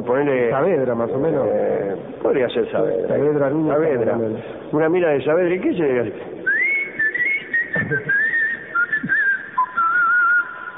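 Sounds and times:
speech: 0.0 - 6.4, 7.8 - 8.2
person whistling a wavering melody: 6.4 - 10.7.

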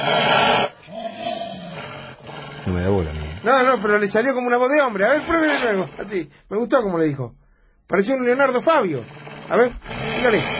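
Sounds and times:
dog growling: 0.0 - 6.2, 8.4 - 10.5
speech: 2.7 - 10.5.

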